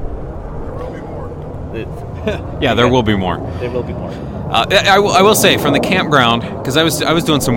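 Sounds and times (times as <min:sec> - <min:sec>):
F-86 jet aircraft roaring overhead at a campground: 0:00.0 - 0:07.5
faint voices murmuring: 0:00.6 - 0:04.5
speech: 0:01.8 - 0:07.5.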